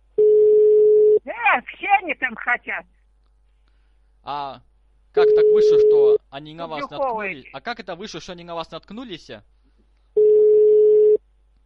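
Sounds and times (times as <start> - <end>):
telephone line beep: 0.2 - 1.2, 5.2 - 6.2, 10.2 - 11.2
speech: 1.6 - 3.0, 4.2 - 9.6.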